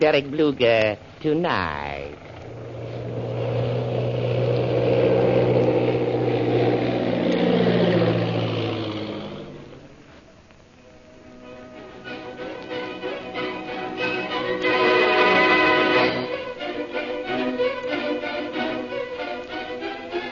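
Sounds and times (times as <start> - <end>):
speech: 0.0 - 2.3
propeller airplane droning overhead as it descends and passes: 0.0 - 20.3.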